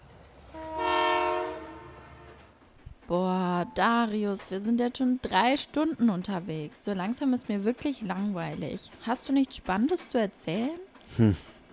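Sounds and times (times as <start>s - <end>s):
approaching train bound for Paris rumbling: 0.0s - 11.7s
train horn chord-like blast: 0.5s - 2.5s
speech: 3.1s - 11.5s.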